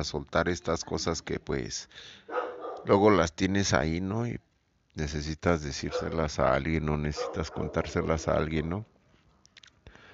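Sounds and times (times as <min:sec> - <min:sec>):
speech: 0:00.0 - 0:08.9
small dog barking: 0:02.3 - 0:02.9, 0:05.9 - 0:06.2, 0:07.2 - 0:08.4.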